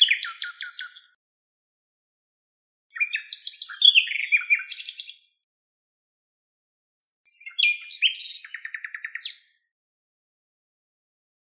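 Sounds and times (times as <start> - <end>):
Luscinia megarhynchos common nightingale singing: 0.0 - 1.2, 2.9 - 5.4, 7.3 - 9.8.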